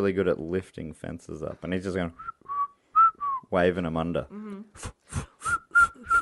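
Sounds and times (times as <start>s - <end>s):
speech: 0.0s - 2.4s, 3.5s - 5.6s
person imitating the whistling of a leader emu: 4.8s - 6.1s.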